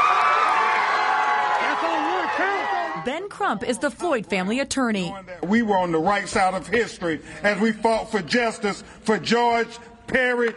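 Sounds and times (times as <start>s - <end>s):
crowd cheering and shouting outside courtroom: 0.0s - 3.3s
speech: 3.0s - 10.5s.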